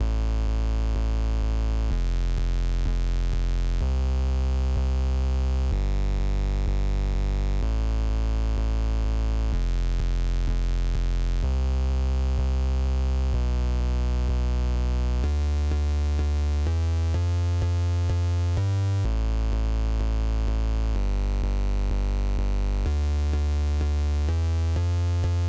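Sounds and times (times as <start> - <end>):
bass drop: 0.0 - 25.4.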